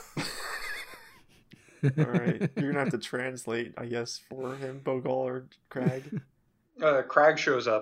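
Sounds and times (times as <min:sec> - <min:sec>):
laughter: 0:00.0 - 0:06.3
speech: 0:01.8 - 0:07.8
person imitating an animal's open-mouthed panting with tongue out: 0:04.4 - 0:04.9.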